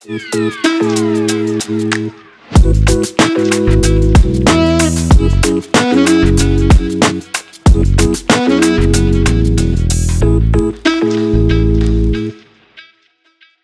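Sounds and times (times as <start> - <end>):
easygoing background hip hop music: 0.0 - 13.4.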